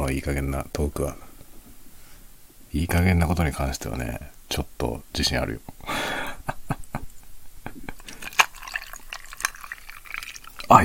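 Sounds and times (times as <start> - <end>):
speech: 0.1 - 1.2, 2.7 - 6.2, 10.7 - 10.8
laughter: 5.9 - 8.2
sake pouring into a cup: 7.9 - 10.8.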